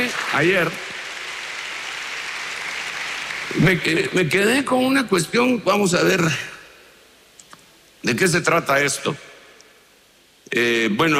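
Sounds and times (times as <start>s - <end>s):
audience applause: 0.0s - 4.3s
speech: 0.3s - 0.9s, 3.5s - 6.5s, 8.0s - 9.3s, 10.5s - 11.1s.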